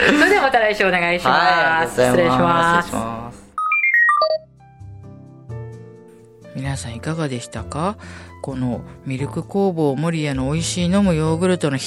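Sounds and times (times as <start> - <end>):
speech: 0.0 - 3.2, 6.6 - 11.8
telephone melodic ringtone: 3.6 - 4.4.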